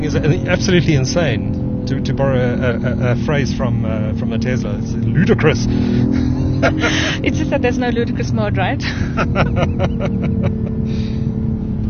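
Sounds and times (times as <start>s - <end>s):
laughter: 0.0s - 0.8s, 6.1s - 7.5s, 8.8s - 10.9s
speech: 0.0s - 11.2s
concrete truck heavy diesel engine droning as it drives past: 0.0s - 11.8s.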